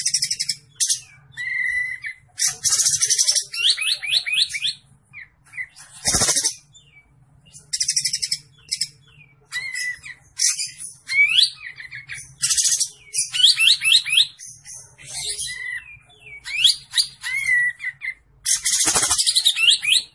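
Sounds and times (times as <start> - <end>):
olive-winged bulbul singing vigorously: 0.0 - 20.1.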